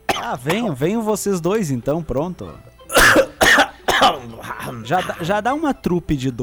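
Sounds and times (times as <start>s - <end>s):
person coughing: 0.1s - 0.7s, 2.9s - 5.4s
speech: 0.2s - 3.2s, 4.0s - 6.4s.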